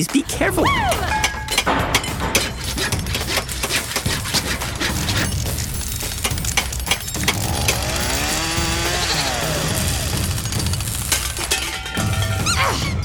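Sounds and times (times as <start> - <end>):
speech: 0.0 - 1.1
metallic clatter: 0.9 - 8.7, 10.1 - 12.5
rapid loud hammer strikes building a machine: 0.9 - 12.6
power tool whining drone: 7.2 - 10.4.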